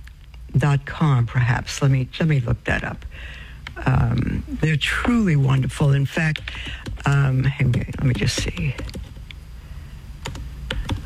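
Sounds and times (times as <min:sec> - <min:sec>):
low steady hum: 0:00.0 - 0:11.0
speech: 0:00.6 - 0:09.1
typing on a computer keyboard: 0:06.3 - 0:09.2, 0:10.2 - 0:11.0.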